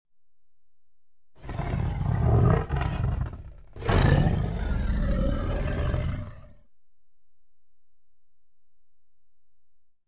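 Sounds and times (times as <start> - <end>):
tiger roaring lightly: 1.4 - 6.6.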